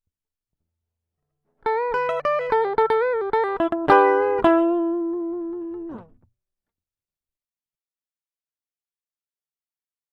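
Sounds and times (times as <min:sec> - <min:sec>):
guitar solo: 0:01.7 - 0:06.2.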